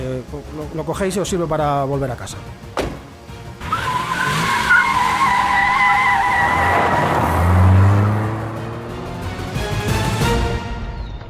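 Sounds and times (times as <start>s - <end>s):
speech: 0.2s - 2.9s
car engine roaring as it drives off: 3.3s - 10.2s
car skidding with sustained tire screech: 3.6s - 9.2s.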